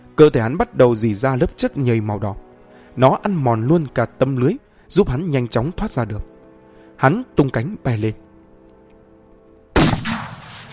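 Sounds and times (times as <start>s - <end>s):
speech: 0.2s - 6.3s, 7.0s - 8.2s
loud explosion from a demon-slaying talisman: 9.8s - 10.7s.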